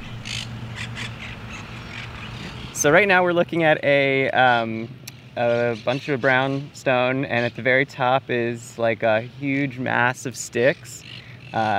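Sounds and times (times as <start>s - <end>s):
parrots squawking in an urban park: 0.0s - 2.8s, 11.0s - 11.7s
steady low city hum: 0.0s - 11.7s
speech: 2.8s - 11.7s.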